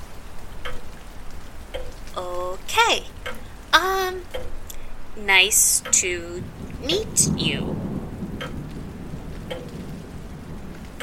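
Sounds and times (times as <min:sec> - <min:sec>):
heavy hurricane storm rain pouring: 0:00.0 - 0:11.0
speech: 0:02.3 - 0:03.2, 0:05.2 - 0:07.8
hurricane thunder rumbling: 0:02.3 - 0:11.0.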